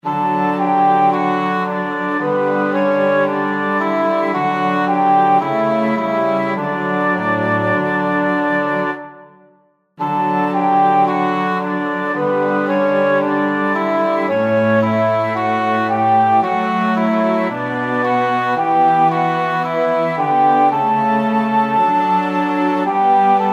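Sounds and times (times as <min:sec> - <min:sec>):
instrumental music in D major with three voices: 0:00.0 - 0:23.5.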